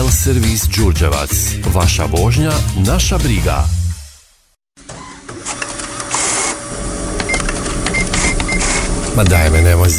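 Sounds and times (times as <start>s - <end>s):
speech: 0.1s - 3.8s, 9.2s - 9.9s
printer whirring and rattling: 4.8s - 9.6s.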